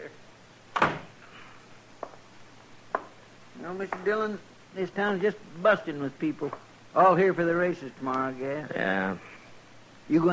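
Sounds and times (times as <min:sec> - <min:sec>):
door shutting with a muffled thump: 0:00.7 - 0:01.2
speech: 0:03.7 - 0:09.3, 0:10.1 - 0:10.3.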